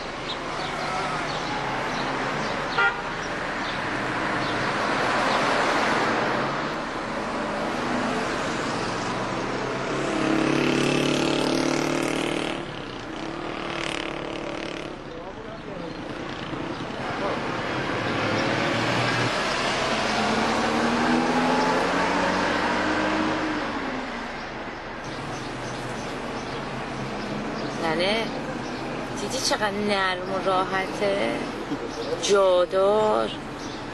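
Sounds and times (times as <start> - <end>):
faint voices murmuring: 0.0 - 5.5, 14.9 - 18.6, 25.0 - 33.9
road rumble inside a moving car: 0.0 - 33.9
speech: 29.5 - 31.5, 32.2 - 33.4.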